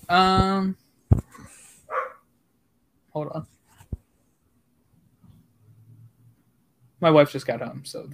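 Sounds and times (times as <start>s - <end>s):
speech: 0.1s - 1.2s, 3.2s - 3.6s, 7.0s - 8.1s
dogs barking excitedly at home: 1.9s - 2.3s.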